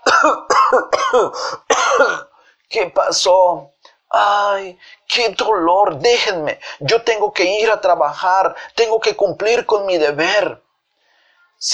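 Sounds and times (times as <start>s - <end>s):
voice acting a wasp character coughing hoarsely: 0.0s - 2.4s
speech: 0.2s - 10.6s.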